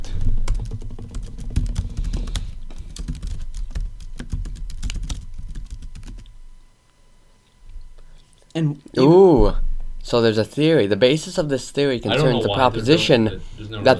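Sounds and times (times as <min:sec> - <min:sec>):
computer keyboard keys clicking as a search is typed: 0:00.1 - 0:06.3
speech: 0:08.6 - 0:13.9.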